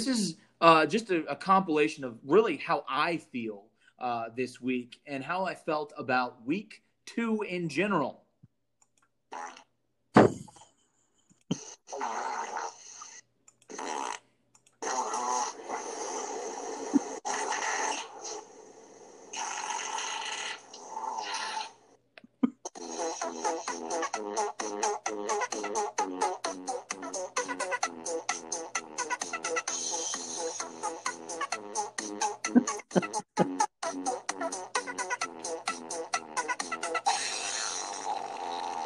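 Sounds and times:
speech: 0:00.0 - 0:08.2, 0:11.5 - 0:12.7, 0:24.2 - 0:36.2
fart sound effects: 0:09.3 - 0:10.6, 0:11.5 - 0:21.8, 0:22.4 - 0:38.8.

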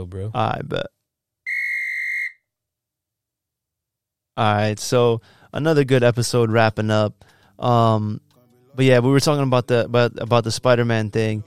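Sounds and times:
speech: 0:00.0 - 0:01.0, 0:04.4 - 0:11.4
whistle sound effect played from a soundboard: 0:01.5 - 0:02.5.

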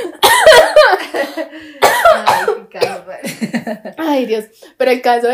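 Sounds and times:
person coughing while laughing: 0:00.2 - 0:00.9, 0:01.8 - 0:03.2
speech: 0:04.2 - 0:05.2.

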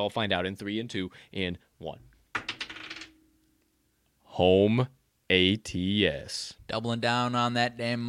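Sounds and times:
speech: 0:00.0 - 0:02.1, 0:04.4 - 0:08.0
die clattering across a hard surface: 0:02.4 - 0:03.2.

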